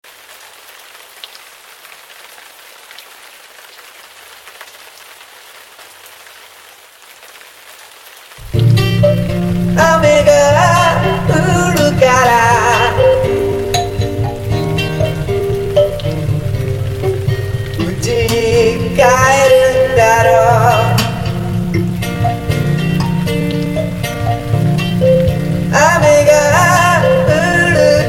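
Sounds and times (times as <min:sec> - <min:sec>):
guitar: 0:08.4 - 0:28.0
mbira: 0:08.4 - 0:28.0.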